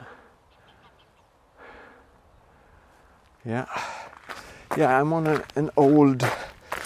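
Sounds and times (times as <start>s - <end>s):
flock of geese honking over open fields: 0.0s - 1.4s
speech: 3.4s - 4.0s, 4.7s - 6.4s.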